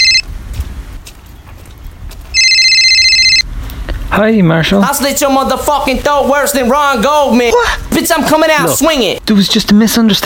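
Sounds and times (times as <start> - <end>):
phone electronic ringtone ringing for an incoming call: 0.0 - 0.3, 2.4 - 3.5
speech: 4.2 - 10.2.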